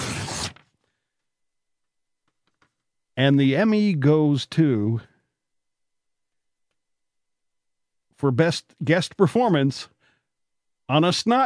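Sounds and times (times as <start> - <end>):
envelope tearing open: 0.0 - 0.7
speech: 3.2 - 5.1, 8.2 - 9.9, 10.9 - 11.4.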